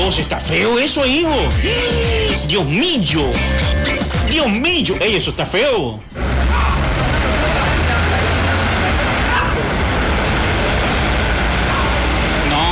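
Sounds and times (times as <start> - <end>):
speech: 0.1 - 6.3
vehicles passing with engines rumbling: 6.1 - 12.7.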